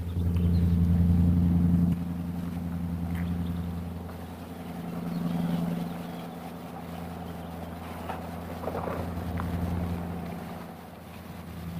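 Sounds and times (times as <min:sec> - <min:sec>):
fire truck engine rumbling: 0:00.0 - 0:11.7.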